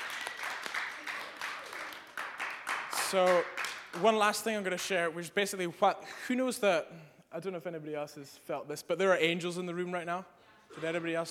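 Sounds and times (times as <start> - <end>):
congregation clapping during a church worship service: 0.0 - 5.0
speech: 3.1 - 11.2.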